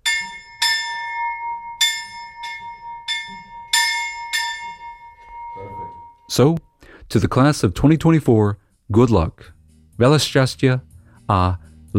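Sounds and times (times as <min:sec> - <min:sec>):
old forestry school bell rung by hand: 0:00.0 - 0:06.6
speech: 0:06.3 - 0:11.9.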